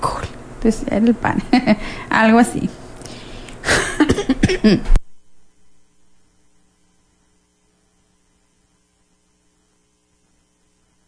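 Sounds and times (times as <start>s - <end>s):
speech: 0.6s - 2.8s, 4.5s - 5.0s
harsh raspy coughing: 3.6s - 4.9s.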